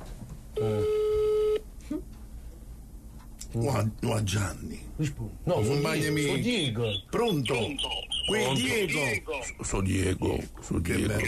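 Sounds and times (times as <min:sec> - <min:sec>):
faint low murmur: 0:00.1 - 0:11.2
speech: 0:00.6 - 0:00.8, 0:03.6 - 0:11.2
telephone ringback tone while placing a call: 0:00.6 - 0:01.6.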